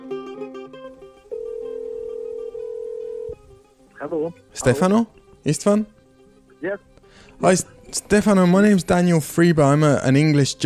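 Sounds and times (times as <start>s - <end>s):
steady electronic ringing tone of an outgoing phone call from London: 1.3s - 3.4s
bright melodic synthetic tones of an outgoing phone call: 4.0s - 5.2s
speech: 4.1s - 6.0s, 6.7s - 10.6s.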